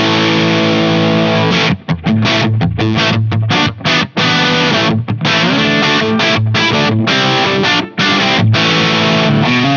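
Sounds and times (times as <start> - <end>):
electric guitar chord riff through an overdrive pedal on the bridge pickup: 0.0 - 9.7.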